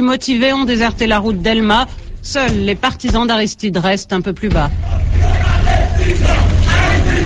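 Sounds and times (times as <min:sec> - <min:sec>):
speech: 0:00.0 - 0:05.3
dense crowd roaring and shouting: 0:04.8 - 0:07.2.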